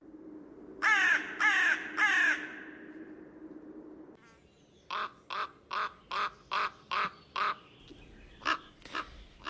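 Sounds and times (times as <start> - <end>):
carrion crow cawing: 0.8 - 2.8, 4.9 - 7.6, 8.4 - 9.4.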